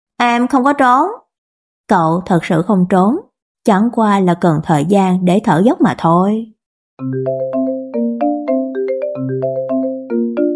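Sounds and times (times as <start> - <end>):
speech: 0.2 - 1.2, 1.9 - 7.7
mobile phone ringtone electronic melody of chiming notes: 7.0 - 10.5.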